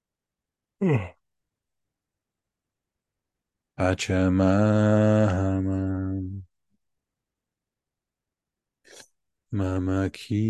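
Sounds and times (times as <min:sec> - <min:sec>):
person yawning: 0:00.8 - 0:01.2
speech: 0:00.8 - 0:01.2, 0:03.8 - 0:06.4, 0:09.5 - 0:10.4.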